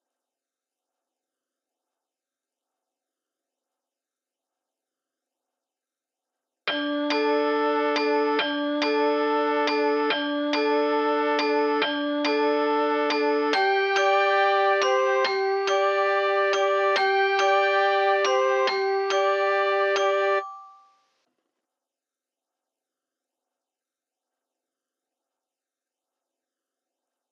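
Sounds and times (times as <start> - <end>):
mallet melody loop in D minor at 140 BPM: 6.7 - 20.9.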